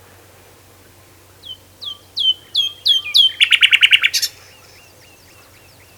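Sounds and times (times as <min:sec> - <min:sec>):
common nightingale Luscinia megarhynchos singing: 0:01.4 - 0:05.9.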